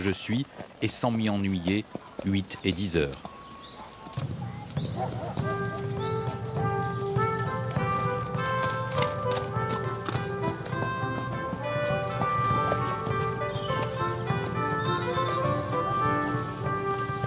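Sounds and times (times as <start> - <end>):
speech: 0.0 - 3.4, 4.2 - 4.4, 5.0 - 5.6
horse hooves clopping on a hard road at a walking pace: 0.0 - 17.2
sustained musical tones: 5.5 - 17.2.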